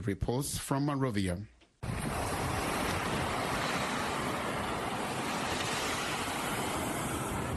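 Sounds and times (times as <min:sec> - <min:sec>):
speech: 0:00.0 - 0:01.6
Atlantic Ocean surf breaking on the shore of the West Point peninsula: 0:01.8 - 0:07.5
wind noise: 0:01.8 - 0:07.5.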